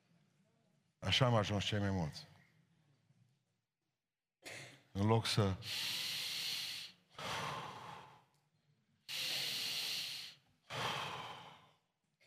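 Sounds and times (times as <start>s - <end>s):
speech: 1.0s - 2.3s, 5.0s - 6.1s
people forcefully exhaling without inhaling: 5.7s - 8.2s, 9.1s - 11.8s.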